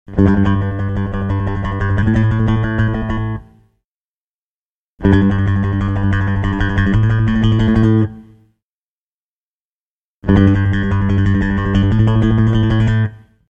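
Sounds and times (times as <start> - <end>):
rock bass guitar: 0.1 - 3.5, 5.0 - 8.3, 10.2 - 13.1.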